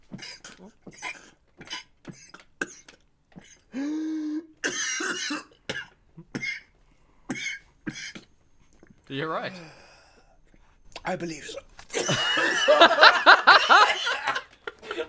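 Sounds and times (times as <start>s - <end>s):
man clearing throat: 0.1s - 6.7s, 7.3s - 8.4s
man coughing: 0.1s - 6.7s, 7.3s - 8.3s, 11.9s - 13.0s
speech: 9.1s - 9.8s, 11.1s - 14.2s
laughter: 11.9s - 15.0s.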